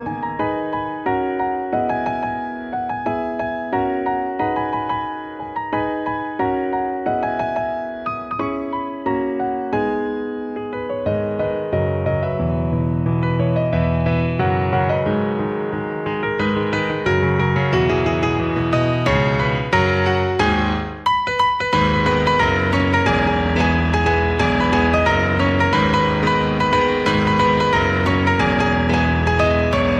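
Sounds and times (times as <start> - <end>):
piano: 0.0 - 29.9.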